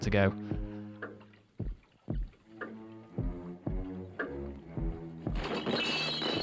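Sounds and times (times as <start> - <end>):
dramatic music: 0.0 - 6.4
laboratory glassware and equipment crashing and shattering: 5.4 - 6.4.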